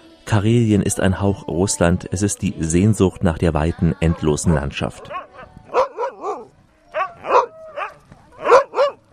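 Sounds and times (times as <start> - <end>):
speech: 0.3 - 5.2
husky sled dogs barking: 4.0 - 9.1.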